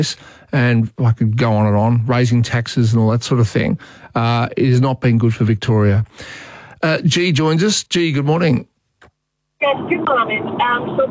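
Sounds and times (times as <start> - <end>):
speech: 0.0 - 8.7, 9.6 - 11.0
caller's tinny voice through a phone speaker: 9.6 - 11.0.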